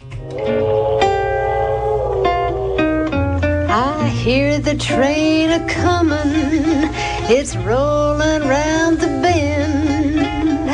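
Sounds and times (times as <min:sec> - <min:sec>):
old blues recording playing: 0:00.0 - 0:10.7
speech: 0:04.2 - 0:09.7.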